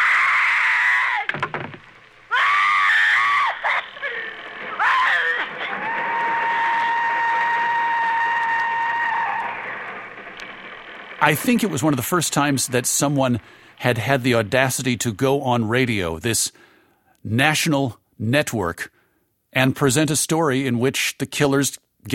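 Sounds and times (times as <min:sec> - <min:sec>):
woman's shrill scream as she is attacked in her bedroom: 0:00.0 - 0:01.3, 0:02.3 - 0:04.0, 0:04.7 - 0:09.6
speech: 0:11.3 - 0:22.1.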